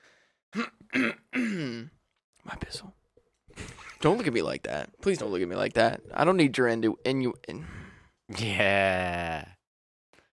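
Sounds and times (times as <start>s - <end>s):
person clearing throat with something stuck in it: 0.6s - 2.0s
speech: 2.5s - 2.9s, 4.0s - 9.5s.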